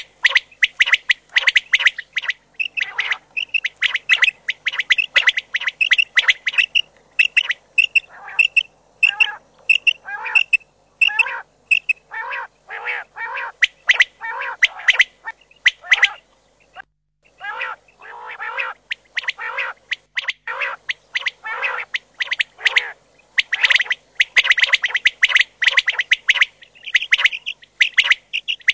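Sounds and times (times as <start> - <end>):
common quail calls: 0.0 - 28.7.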